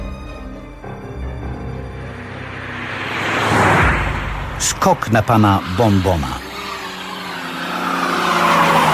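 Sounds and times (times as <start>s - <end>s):
small green car engine howling as it accelerates hard: 1.9s - 8.9s
speech: 4.8s - 6.4s.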